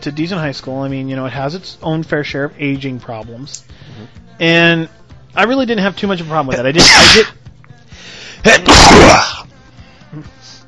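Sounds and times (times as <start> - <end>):
speech: 0.0 - 7.4, 8.4 - 9.4, 10.1 - 10.4
single loud sneeze with sharp intake: 6.8 - 7.4, 8.4 - 9.4.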